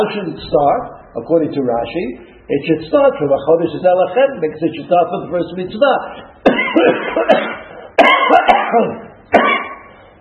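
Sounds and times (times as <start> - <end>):
speech: 0.0 - 7.5, 8.7 - 9.5
harsh loud coughs: 6.4 - 10.1.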